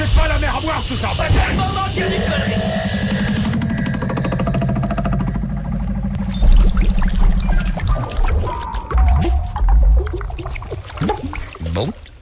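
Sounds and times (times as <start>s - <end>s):
droning hum: 0.0s - 12.0s
water pouring and gushing into a sinking boat: 6.2s - 12.2s.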